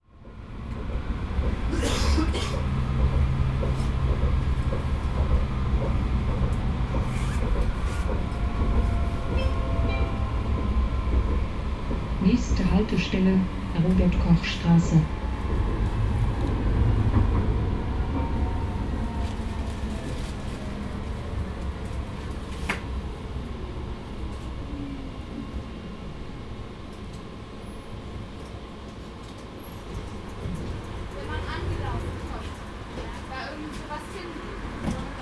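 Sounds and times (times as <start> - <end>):
tram: 0.0 - 35.2.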